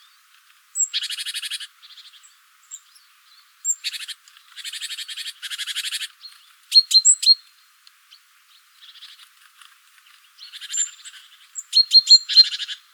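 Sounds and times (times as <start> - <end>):
great tit Parus major calls: 0.8 - 7.4, 10.3 - 12.9.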